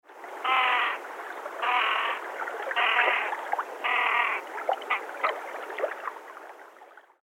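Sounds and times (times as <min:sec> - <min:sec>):
great crested grebe calls: 0:00.4 - 0:05.4.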